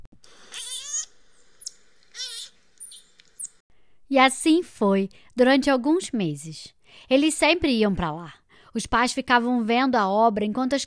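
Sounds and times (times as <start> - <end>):
troop of marmosets squealing in a tree: 0.4 - 3.6
speech: 4.1 - 10.8.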